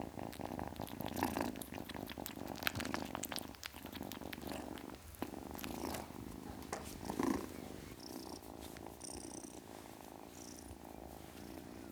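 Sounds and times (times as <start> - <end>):
ten-week-old domestic kitten purring: 0.0 - 11.9.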